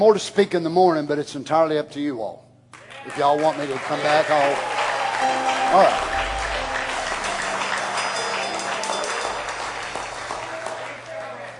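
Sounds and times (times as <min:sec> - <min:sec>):
speech: 0:00.0 - 0:06.2
crowd applauding: 0:02.8 - 0:11.5.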